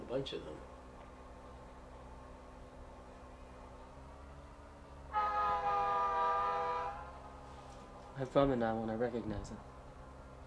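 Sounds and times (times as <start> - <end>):
speech: 0.1 - 0.7, 8.2 - 9.7
train whistle blowing: 5.1 - 7.4.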